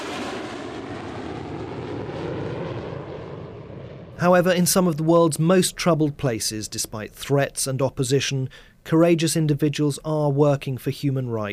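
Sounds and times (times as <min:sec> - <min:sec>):
airplane engine droning: 0:00.0 - 0:05.1
speech: 0:04.2 - 0:11.5.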